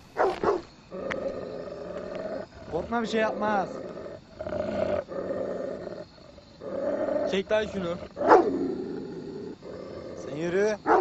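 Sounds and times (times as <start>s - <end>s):
dog barking sharply: 0.2s - 0.7s, 8.2s - 8.6s
dog growling low: 0.9s - 10.9s
speech: 2.8s - 3.8s, 7.3s - 8.3s, 10.4s - 10.9s.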